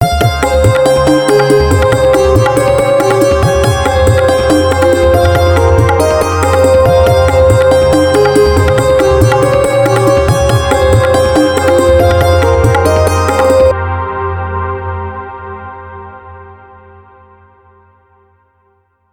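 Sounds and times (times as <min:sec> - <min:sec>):
Indian tabla: 0:00.0 - 0:14.8
Indian santoor: 0:00.0 - 0:15.0.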